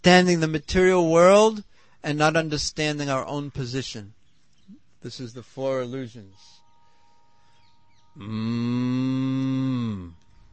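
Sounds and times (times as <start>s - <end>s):
speech: 0.0s - 4.2s, 5.0s - 6.6s, 8.2s - 10.2s
quiet noise: 0.0s - 10.5s
cow mooing: 8.2s - 10.2s.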